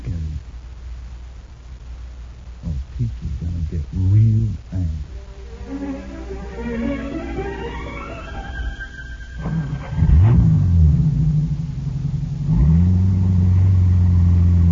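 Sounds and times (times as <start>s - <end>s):
speech: 3.0s - 5.1s, 5.7s - 8.0s
car engine idling and revving: 9.5s - 14.7s.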